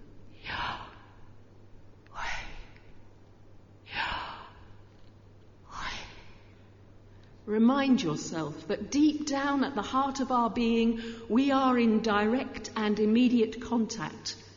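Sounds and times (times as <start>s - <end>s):
faint hum: 0.0s - 14.5s
slow deliberate breathing in and out: 2.1s - 3.1s, 3.8s - 7.4s
speech: 7.5s - 14.4s.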